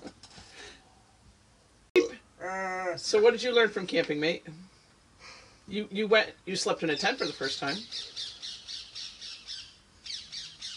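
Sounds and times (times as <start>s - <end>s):
speech: 2.4s - 4.6s, 5.7s - 8.1s
angry parrot squawking harshly: 7.2s - 10.7s.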